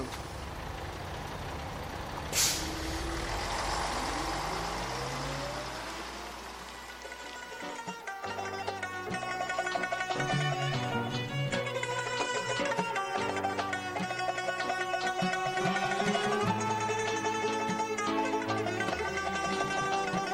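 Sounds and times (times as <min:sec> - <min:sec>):
large bus engine rumbling, slowing and idling: 0:00.0 - 0:20.3
bus air brakes hissing: 0:02.3 - 0:04.7.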